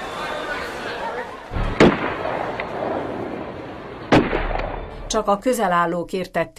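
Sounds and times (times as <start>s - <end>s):
crowd murmuring: 0.0s - 5.2s
gunshots echoing across an open square: 1.5s - 5.1s
speech: 5.1s - 6.5s.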